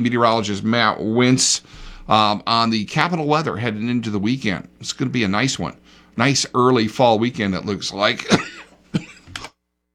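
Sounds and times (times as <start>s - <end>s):
speech: 0.0s - 9.1s
cough from someone with seasonal allergies: 8.2s - 9.5s
throat clearing from someone with seasonal allergies: 8.2s - 9.5s.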